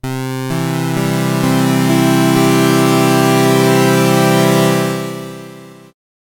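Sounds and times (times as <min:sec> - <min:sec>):
multi-voice SID synthesizer: 0:00.0 - 0:06.0.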